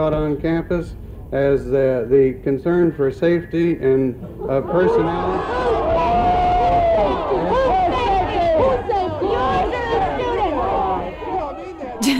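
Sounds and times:
speech: 0.0 - 5.8, 6.9 - 9.1
large protest crowd shouting and chanting: 4.3 - 12.1
laughter: 4.3 - 12.1.

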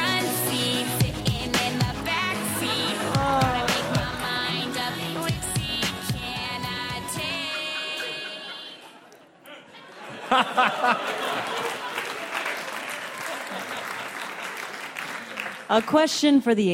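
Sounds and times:
pop song with sung melody, percussion and layered instruments: 0.0 - 9.1
laughter: 2.2 - 5.3, 6.8 - 15.4
speech: 15.8 - 16.7.

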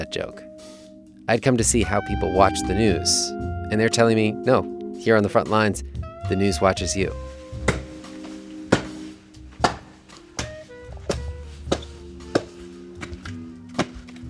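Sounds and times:
speech: 0.0 - 7.3
small axe chopping wood on a patio in Kyiv Ukraine: 7.6 - 7.9, 8.7 - 9.0, 9.6 - 14.2.

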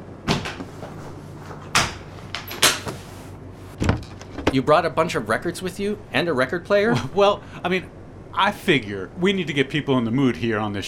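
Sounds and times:
wooden thuds and knocks of a large wheeled travel chest being opened: 0.3 - 1.0, 1.6 - 3.0, 3.8 - 4.6
speech: 4.5 - 10.8.

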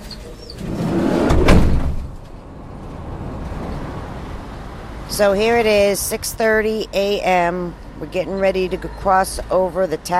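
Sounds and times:
dog transport van sliding door opening: 0.5 - 3.8
speech: 5.2 - 10.1.

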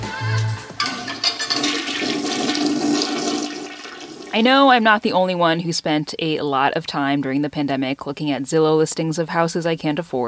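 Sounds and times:
toilet flushing in a home: 0.8 - 4.5
speech: 4.4 - 10.2.

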